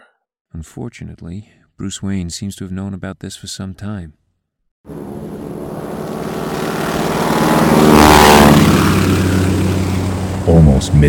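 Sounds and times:
speech: 0:00.5 - 0:04.2, 0:10.8 - 0:11.0
propeller-driven crop duster flying overhead: 0:04.9 - 0:11.0.

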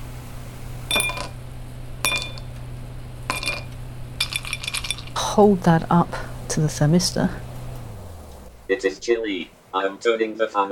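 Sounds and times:
steady low hum: 0:00.0 - 0:09.6
ice cubes clinking against a glass: 0:00.9 - 0:01.4, 0:02.1 - 0:02.5, 0:03.3 - 0:05.2
speech: 0:05.4 - 0:07.4, 0:08.8 - 0:10.7.

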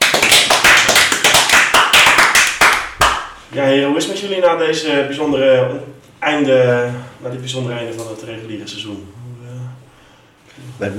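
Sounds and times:
crowd applause: 0:00.0 - 0:03.3
speech: 0:03.6 - 0:09.2, 0:10.8 - 0:10.9.

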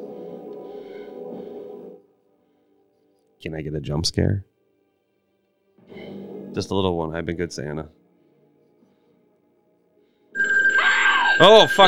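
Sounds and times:
speech: 0:03.4 - 0:04.5, 0:06.6 - 0:08.0, 0:11.4 - 0:11.8
cell phone ringtone: 0:10.4 - 0:11.8.

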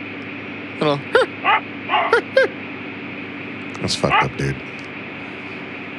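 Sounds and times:
speech: 0:00.8 - 0:01.3, 0:03.8 - 0:04.9
small dog yapping through tinny Ford car radio speakers: 0:01.4 - 0:02.3, 0:04.1 - 0:04.4.

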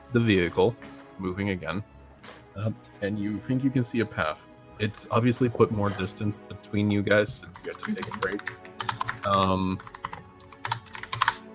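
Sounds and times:
speech: 0:00.1 - 0:10.0
typing on a computer keyboard: 0:06.8 - 0:11.4.

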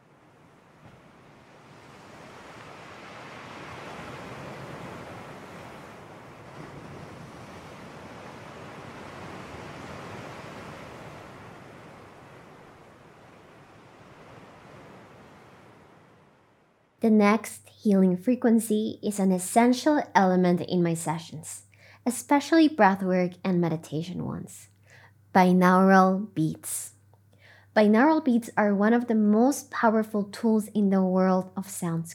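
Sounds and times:
ocean waves breaking: 0:00.0 - 0:17.5
speech: 0:17.0 - 0:24.7, 0:25.3 - 0:26.9, 0:27.8 - 0:32.1.

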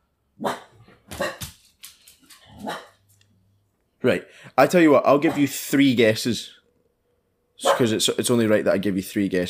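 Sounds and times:
several dogs barking: 0:00.4 - 0:01.5, 0:02.5 - 0:03.0, 0:05.2 - 0:05.6, 0:07.6 - 0:07.9
speech: 0:04.0 - 0:06.6, 0:07.6 - 0:09.4.

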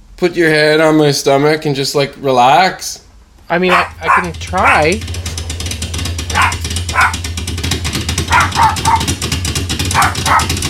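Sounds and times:
speech: 0:00.2 - 0:05.2
dog barking: 0:03.6 - 0:05.0, 0:06.3 - 0:07.3, 0:08.2 - 0:09.2, 0:09.9 - 0:10.6
rushing noise: 0:03.6 - 0:09.2.

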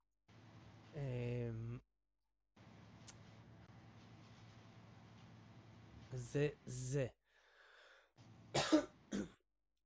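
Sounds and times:
speech: 0:01.0 - 0:01.3, 0:06.2 - 0:07.2
person coughing or sneezing: 0:08.6 - 0:09.4.

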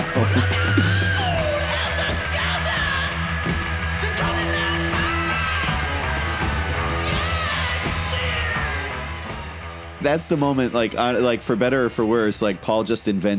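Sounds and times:
raw high-pitched rock vocal scream: 0:00.0 - 0:09.8
guitars: 0:00.0 - 0:13.3
loud dense rock band music: 0:00.0 - 0:13.3
speech: 0:00.2 - 0:00.6, 0:10.0 - 0:13.3.

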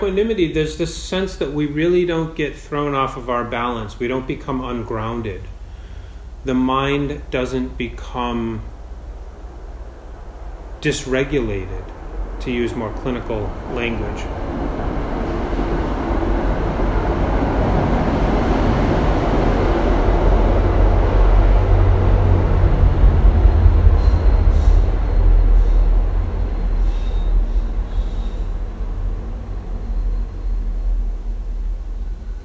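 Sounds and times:
speech: 0:00.0 - 0:05.6, 0:06.4 - 0:08.7, 0:10.8 - 0:14.7
commuter train rumbling past at close range: 0:00.0 - 0:32.4
faint metallic squeals: 0:23.8 - 0:32.4.

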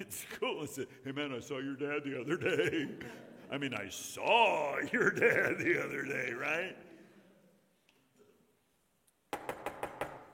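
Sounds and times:
speech: 0:00.0 - 0:06.9
faint noise: 0:00.0 - 0:10.3
laughter: 0:01.9 - 0:06.4
firm knocking on a door: 0:09.3 - 0:10.3.

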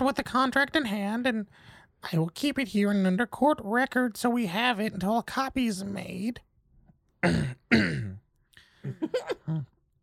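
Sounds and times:
speech: 0:00.0 - 0:06.5, 0:07.2 - 0:08.2, 0:08.8 - 0:09.7
person clearing throat: 0:07.2 - 0:08.2.

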